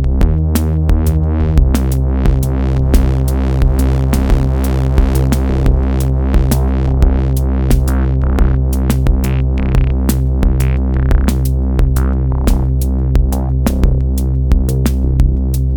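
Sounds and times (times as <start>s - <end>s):
synthesizer playing live: 0.2s - 15.6s.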